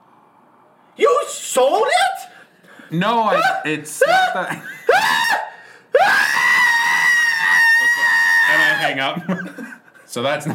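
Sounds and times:
speech: 1.0s - 2.3s, 2.9s - 5.4s, 8.8s - 10.5s
voice imitating a woman and a child screaming: 3.2s - 9.0s
laughter: 3.4s - 5.3s, 7.5s - 10.5s.

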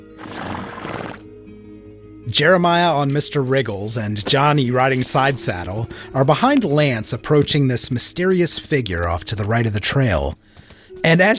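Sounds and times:
horse whinnying: 0.0s - 1.3s
speech: 2.3s - 10.4s, 11.0s - 11.3s.

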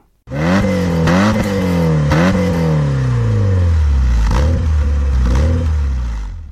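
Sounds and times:
large-displacement car engine revving: 0.3s - 6.5s.

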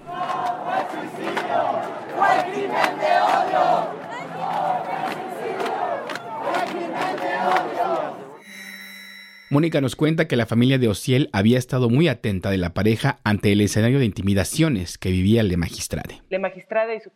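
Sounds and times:
large protest march crowd chanting slogans in unison: 0.0s - 8.4s
speech: 9.5s - 17.1s.

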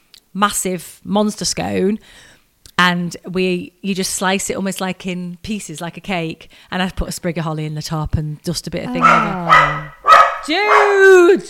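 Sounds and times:
speech: 0.4s - 9.8s, 10.4s - 11.4s
dog barking with a whining howl-like tone: 9.0s - 11.3s.

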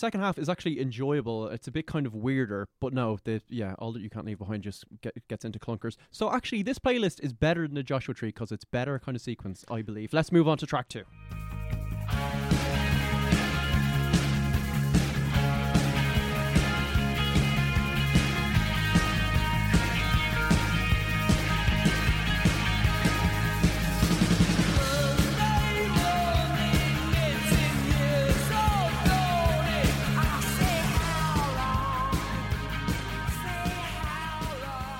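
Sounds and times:
speech: 0.0s - 12.7s
rock song with drumbeat, thick bass and layered guitars: 11.2s - 34.9s.

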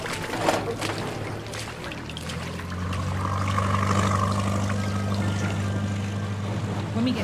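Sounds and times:
water splashing and churning around the hull: 0.0s - 7.0s
small motorboat engine starting up and droning: 0.0s - 7.2s.

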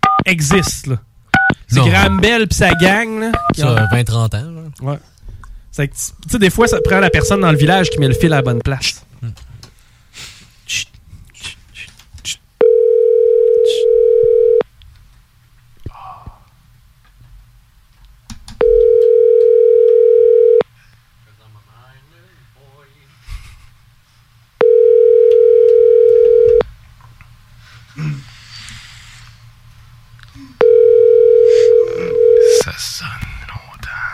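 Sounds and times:
speech: 0.2s - 1.1s, 1.7s - 5.1s, 5.7s - 9.4s, 10.2s - 10.9s
breathing: 5.0s - 5.7s, 9.6s - 10.7s, 15.8s - 16.5s, 20.6s - 21.1s, 27.6s - 29.5s, 31.3s - 32.3s
telephone ringback tone: 6.7s - 8.6s, 12.6s - 14.6s, 18.6s - 20.6s, 24.6s - 26.6s, 30.6s - 32.6s.

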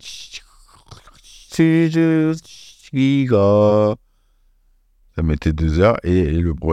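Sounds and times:
voice imitating a dial-up modem connecting to the Internet: 0.0s - 4.0s
speech: 1.6s - 4.0s, 5.2s - 6.7s.

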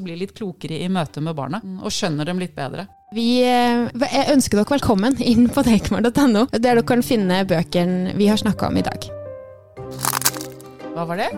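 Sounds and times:
speech: 0.0s - 9.2s, 11.0s - 11.3s
sharp cracking sound effect: 9.9s - 10.7s.

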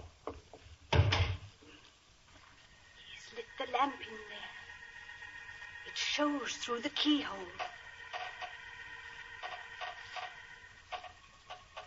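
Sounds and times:
speech: 3.6s - 4.5s, 6.2s - 7.6s
nails squeaking and creaking as a wooden box lid is pried loose: 7.3s - 11.8s.

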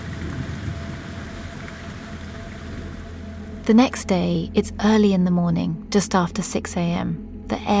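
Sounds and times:
heavy rain pouring at night: 0.0s - 4.2s
low rumble: 0.0s - 7.7s
speech: 3.7s - 7.7s.

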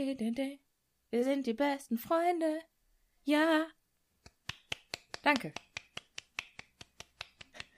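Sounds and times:
speech: 0.0s - 3.8s, 5.2s - 5.7s
light hand clapping: 4.2s - 7.7s.

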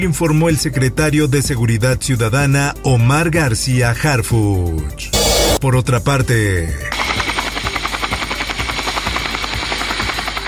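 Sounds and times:
speech: 0.0s - 7.2s
police helicopter rotor blades chopping over engine roar: 6.9s - 10.4s.

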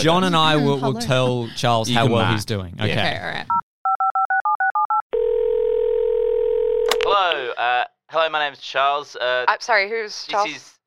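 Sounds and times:
speech: 0.0s - 3.6s, 7.3s - 10.8s
telephone dial tone: 3.9s - 7.0s.

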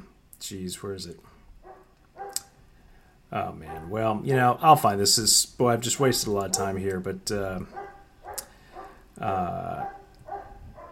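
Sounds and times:
speech: 0.4s - 1.4s, 3.3s - 7.9s, 9.2s - 10.0s
German Shepherd barking next door: 1.6s - 2.5s, 3.6s - 4.0s, 7.7s - 9.0s, 9.6s - 10.8s.

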